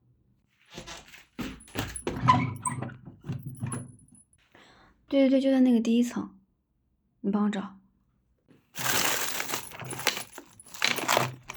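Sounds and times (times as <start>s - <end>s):
small items clattering and rustling inside a drawer: 1.4s - 4.0s, 8.8s - 11.5s
speech: 5.1s - 6.4s, 7.2s - 7.8s
drawer sliding open: 8.8s - 11.5s.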